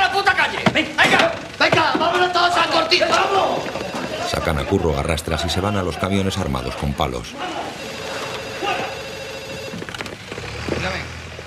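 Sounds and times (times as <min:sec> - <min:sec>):
busy noise in a bar: 0:00.0 - 0:11.4
speech: 0:00.4 - 0:02.3, 0:04.5 - 0:07.8
telephone ringing in a bar with electronic bell tone: 0:02.6 - 0:10.0.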